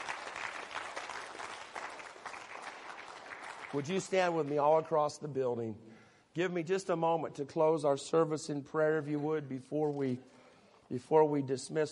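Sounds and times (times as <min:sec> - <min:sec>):
audience applauding: 0:00.0 - 0:04.2
speech: 0:03.7 - 0:11.9.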